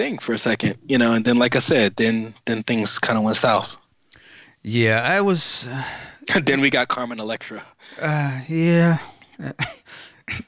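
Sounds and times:
speech: 0.0s - 3.8s, 4.6s - 10.4s
person clearing throat: 8.1s - 10.4s.

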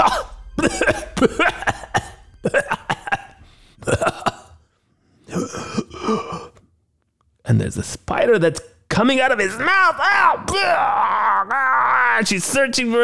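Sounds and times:
man coughing hard: 0.0s - 4.7s, 5.3s - 6.6s
speech: 1.2s - 1.5s, 8.3s - 13.0s.

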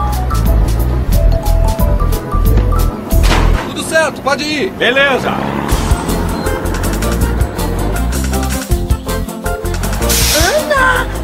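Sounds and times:
large truck engine rumbling: 0.0s - 11.2s
voices murmuring: 3.6s - 8.7s
speech: 4.2s - 5.6s
burst of hissing air: 10.0s - 10.7s.

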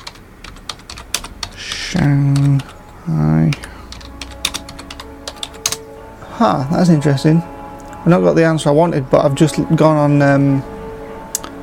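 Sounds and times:
typing a web search on a computer keyboard: 0.0s - 2.7s, 3.5s - 5.8s
speech: 1.9s - 3.3s, 6.4s - 10.7s.

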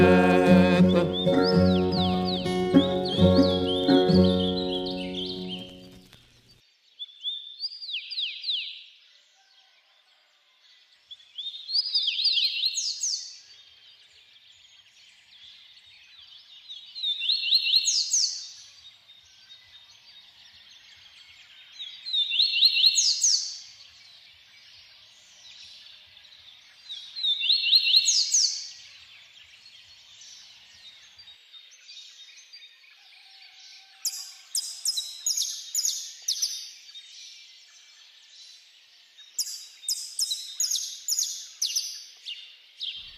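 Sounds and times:
music: 0.0s - 6.1s
small bird singing in high chirping phrases: 0.0s - 6.1s, 11.1s - 43.1s.

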